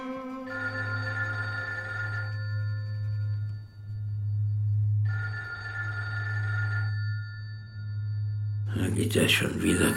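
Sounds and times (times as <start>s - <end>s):
telephone ringing: 0.1s - 9.9s
continuous low hum: 0.4s - 5.9s, 6.7s - 8.9s
speech: 9.1s - 9.9s.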